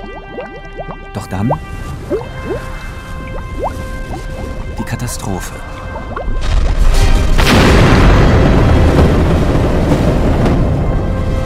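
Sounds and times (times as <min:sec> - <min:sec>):
speech: 0:01.2 - 0:02.2, 0:05.0 - 0:06.4
massive meteorite impact boom on an ocean-covered moon: 0:06.3 - 0:11.3.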